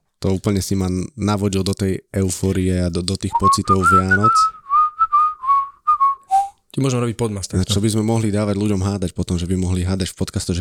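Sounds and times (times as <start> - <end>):
speech: 0.2 - 4.6, 6.8 - 10.6
person whistling a Christmas tune: 3.3 - 6.6.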